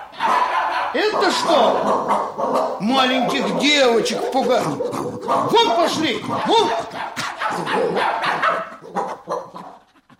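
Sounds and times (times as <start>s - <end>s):
huge dog and bow-legged snub-nosed dog barking excitedly: 0.0s - 10.1s
speech: 0.9s - 7.0s.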